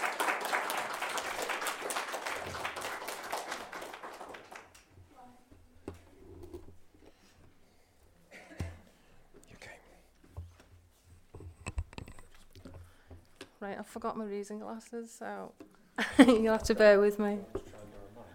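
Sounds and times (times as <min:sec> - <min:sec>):
crowd applauding: 0:00.0 - 0:04.9
speech: 0:13.6 - 0:17.6.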